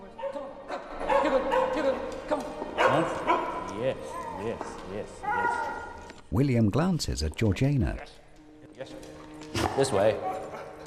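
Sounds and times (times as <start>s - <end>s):
two dogs barking and yipping while playing on stairs in an entrance hall: 0.2s - 4.5s, 10.0s - 10.8s
speech: 3.9s - 8.2s, 9.8s - 10.3s.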